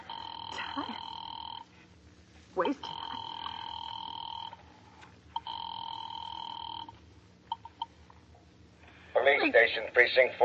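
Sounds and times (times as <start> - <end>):
telephone line ringing through to a police department: 0.0 - 1.7, 2.8 - 4.7, 5.4 - 8.0
speech: 0.6 - 1.1, 2.6 - 3.0, 9.3 - 10.4.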